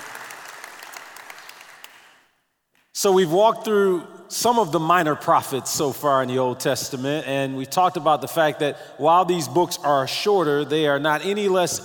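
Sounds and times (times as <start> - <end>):
congregation applause during a church service: 0.0 - 2.4
speech: 3.0 - 11.8.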